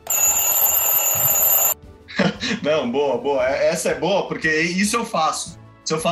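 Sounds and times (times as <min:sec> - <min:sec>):
alarm clock ringing with a shrill electronic tone: 0:00.0 - 0:01.8
speech: 0:02.6 - 0:06.0.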